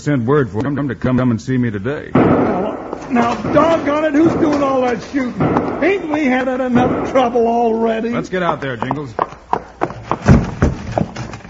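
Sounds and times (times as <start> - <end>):
speech: 0.0 - 9.3
horse galloping down a street with a rider: 2.7 - 11.4.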